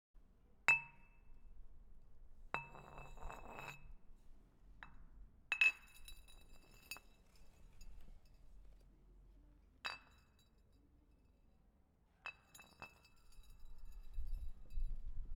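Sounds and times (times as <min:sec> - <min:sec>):
glass bottle rolling: 0:02.6 - 0:04.0, 0:04.9 - 0:08.8, 0:12.3 - 0:15.3.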